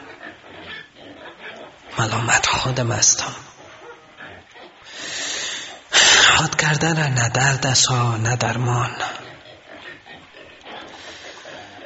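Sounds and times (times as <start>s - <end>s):
pigs grunting and oinking: 0.0s - 6.2s, 8.8s - 11.8s
speech: 2.0s - 3.6s, 6.4s - 9.2s.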